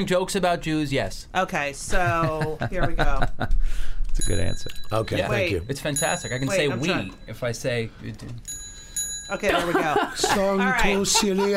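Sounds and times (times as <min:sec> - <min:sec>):
speech: 0:00.0 - 0:08.6, 0:09.3 - 0:11.5
laughter: 0:01.9 - 0:03.6, 0:09.5 - 0:11.5
small bell struck, bright ringing metallic tones: 0:04.2 - 0:10.0.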